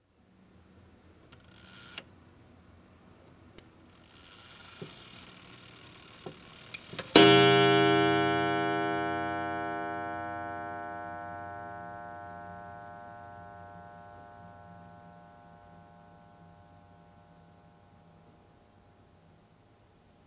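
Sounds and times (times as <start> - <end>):
clock chiming the hour: 7.1 - 18.2.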